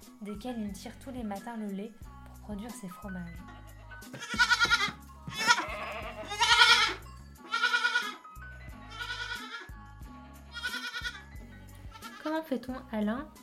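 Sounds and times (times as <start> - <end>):
speech: 0.2 - 4.9, 12.4 - 13.4
goats bleating on a farm in the Brenne in early-morning mist: 3.5 - 8.2, 8.9 - 9.7, 10.5 - 11.2, 11.9 - 12.2.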